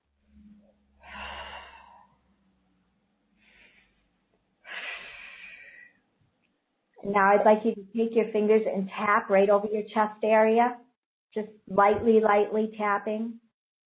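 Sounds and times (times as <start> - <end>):
slow deep breaths during a guided healing exercise: 0.9 - 2.3, 3.4 - 6.0
speech: 7.0 - 13.4.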